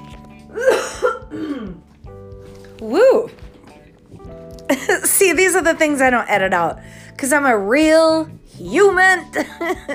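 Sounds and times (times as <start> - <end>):
person clearing phlegm from throat: 0.5 - 1.9
speech: 2.8 - 3.4, 5.2 - 9.9.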